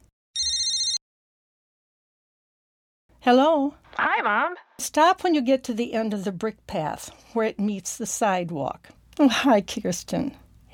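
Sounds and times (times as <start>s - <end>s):
bright electronic phone ringtone: 0.4s - 1.0s
speech: 3.2s - 10.7s.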